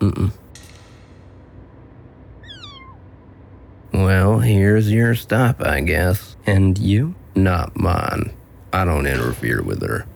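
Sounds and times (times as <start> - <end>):
steady low rumble: 0.0 - 10.1
cat meowing: 2.4 - 3.0
speech: 4.1 - 10.1.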